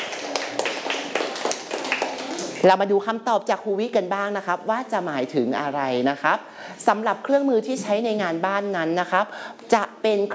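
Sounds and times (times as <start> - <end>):
children in a classroom clapping for classmates: 0.0 - 2.6
speech: 2.6 - 10.3.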